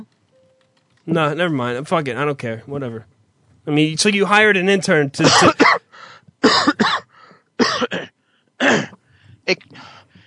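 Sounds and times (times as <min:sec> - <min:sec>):
speech: 0:01.0 - 0:03.1, 0:03.7 - 0:05.8, 0:09.5 - 0:09.9
person at a desk coughing: 0:05.2 - 0:09.0.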